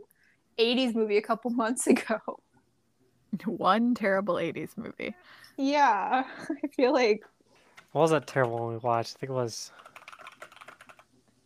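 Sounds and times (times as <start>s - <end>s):
speech: 0.6s - 2.4s, 3.4s - 7.3s, 7.9s - 9.8s
computer keyboard clicks: 7.7s - 9.1s, 9.8s - 11.1s.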